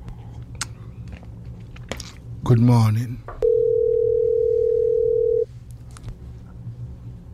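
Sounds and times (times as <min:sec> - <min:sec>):
speech: 0:02.4 - 0:03.4
telephone dial tone while placing a call: 0:03.4 - 0:05.5.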